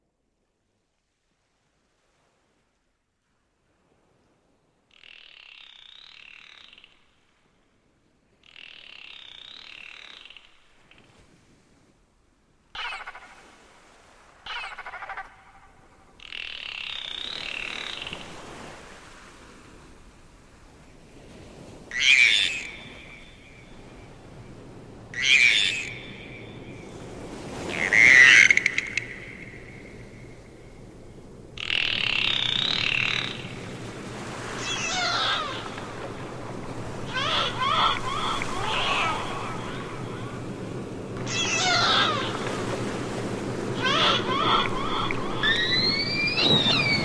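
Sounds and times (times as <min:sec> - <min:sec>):
dolphins vocalizing: 0:12.7 - 0:19.5, 0:21.5 - 0:24.4, 0:25.1 - 0:47.0.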